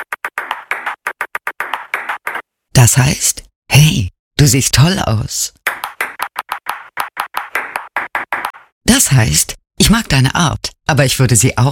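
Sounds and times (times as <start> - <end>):
table tennis ball bouncing in Morse-like rhythm: 0.0 - 2.4, 5.7 - 8.7
speech: 2.8 - 5.6, 9.1 - 11.7.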